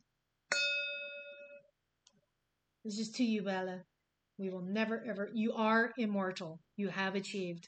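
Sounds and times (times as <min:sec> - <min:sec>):
wine glasses clinking: 0:00.5 - 0:01.6
speech: 0:02.8 - 0:07.6.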